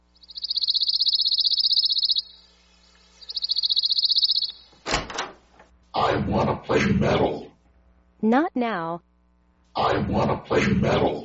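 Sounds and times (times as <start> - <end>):
pine warbler singing a rapid trill: 0.0 - 2.4, 3.2 - 4.7
speech: 6.7 - 7.5, 8.2 - 9.1, 9.8 - 11.2.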